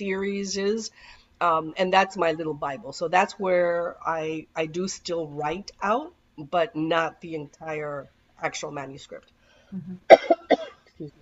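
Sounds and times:
speech: 0:00.0 - 0:11.2
person coughing: 0:10.1 - 0:10.8.

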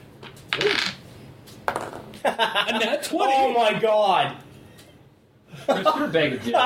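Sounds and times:
dice rolling on a hard tabletop during a tabletop role-playing game: 0:00.2 - 0:01.0, 0:01.7 - 0:02.2
speech: 0:02.2 - 0:04.4, 0:05.7 - 0:06.6.

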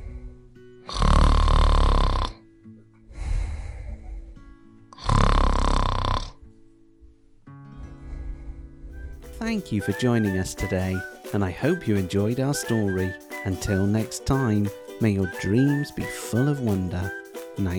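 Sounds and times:
loud rhythmic snoring performed by a voice: 0:00.9 - 0:02.4, 0:05.0 - 0:06.4
speech: 0:09.5 - 0:17.7.

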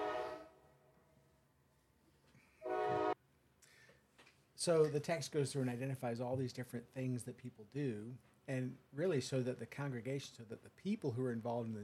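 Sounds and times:
passing train horn blasts: 0:00.0 - 0:00.6, 0:02.6 - 0:03.2
speech: 0:04.6 - 0:11.8.

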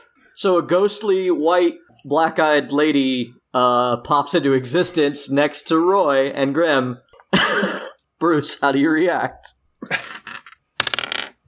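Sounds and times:
speech: 0:00.4 - 0:10.1
dice clattering across a hard surface: 0:10.2 - 0:11.4.

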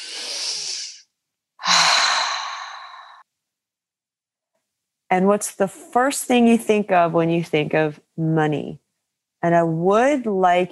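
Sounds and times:
deep breaths during a guided money-themed relaxation exercise: 0:00.0 - 0:03.3
speech: 0:05.1 - 0:08.8, 0:09.4 - 0:10.7.

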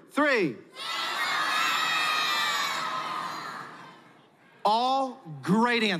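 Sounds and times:
speech: 0:00.1 - 0:01.0, 0:04.7 - 0:05.9
large crowd of children and adults shouting: 0:00.7 - 0:04.2.

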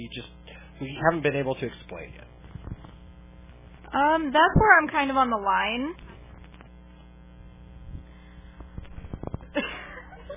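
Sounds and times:
speech: 0:00.0 - 0:02.4, 0:03.9 - 0:06.0
louder burst of static: 0:00.0 - 0:10.3
steady low electrical interference buzz: 0:00.0 - 0:10.3
sharp crackling pops: 0:02.2 - 0:03.9, 0:05.9 - 0:09.6.

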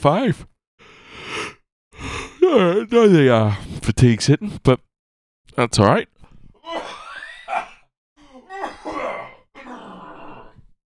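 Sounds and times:
speech: 0:00.0 - 0:00.5, 0:02.5 - 0:04.9, 0:05.5 - 0:06.1
raspy coughing and throat clearing with a groaning voiced edge: 0:06.6 - 0:09.8.

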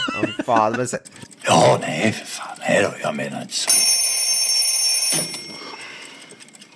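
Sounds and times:
laughter: 0:00.0 - 0:01.0
alarm clocks ticking: 0:00.0 - 0:06.7
speech: 0:00.2 - 0:03.9, 0:05.1 - 0:05.5
several alarm clocks ringing: 0:01.4 - 0:06.7.

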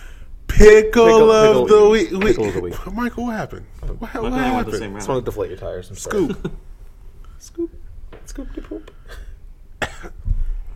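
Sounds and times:
speech: 0:00.6 - 0:06.6, 0:07.4 - 0:09.3
harsh cough: 0:09.1 - 0:10.2.

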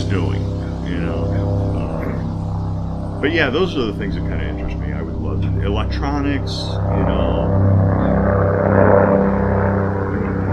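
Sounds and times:
helicopter with engine drone and rotor thrum passing overhead: 0:00.0 - 0:10.5
speech: 0:00.1 - 0:01.3, 0:03.2 - 0:07.7.

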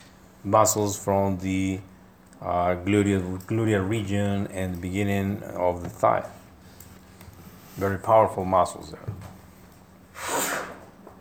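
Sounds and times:
speech: 0:00.4 - 0:06.4, 0:07.8 - 0:09.3
person sneezing: 0:10.2 - 0:10.9.

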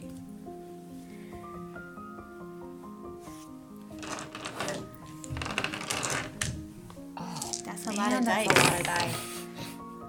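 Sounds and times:
handful of dice clattering across a hard surface: 0:04.0 - 0:06.6, 0:07.4 - 0:09.2
speech: 0:08.0 - 0:09.3.

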